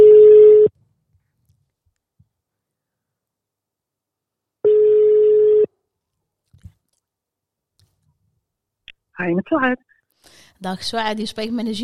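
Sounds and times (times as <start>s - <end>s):
ringback tone of an outgoing telephone call ringing out: 0.0s - 0.7s, 4.6s - 5.7s
speech: 9.2s - 9.9s, 10.6s - 11.8s.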